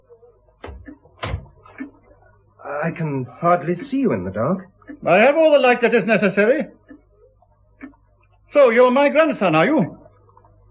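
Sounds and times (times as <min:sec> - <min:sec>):
door being closed: 0:00.6 - 0:01.7
speech: 0:02.7 - 0:06.8, 0:08.5 - 0:09.9.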